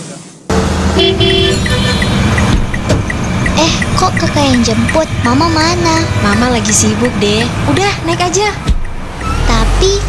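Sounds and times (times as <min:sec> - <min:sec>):
short car horn honks in a traffic jam: 0:00.5 - 0:02.9
engines rumbling: 0:00.5 - 0:10.0
steady roar of congested traffic: 0:00.5 - 0:10.0
speech: 0:04.0 - 0:08.7, 0:09.8 - 0:10.0.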